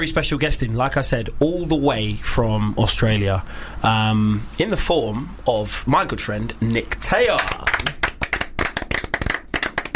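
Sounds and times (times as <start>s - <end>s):
speech: 0.0s - 8.0s
hand clapping: 7.3s - 9.9s.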